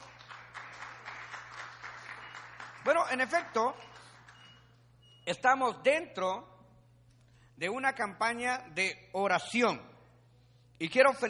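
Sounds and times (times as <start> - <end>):
audience applauding: 0.0 - 4.8
low electrical hum: 0.0 - 11.2
speech: 2.8 - 3.9, 5.3 - 6.5, 7.6 - 9.9, 10.8 - 11.2.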